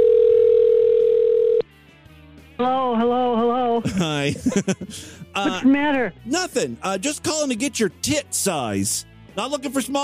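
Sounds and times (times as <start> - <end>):
electronic phone ringback tone on an outgoing call: 0.0 - 1.6
speech: 2.6 - 10.0
laughter: 3.8 - 5.8.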